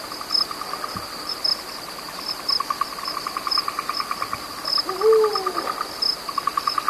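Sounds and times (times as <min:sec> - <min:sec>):
high chirping insects: 0:00.0 - 0:06.8
Eurasian eagle-owl call: 0:04.8 - 0:05.8.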